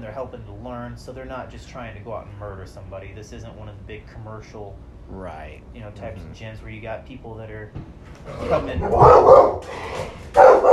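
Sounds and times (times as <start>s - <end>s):
speech: 0.0s - 10.7s
dog barking: 8.7s - 10.7s.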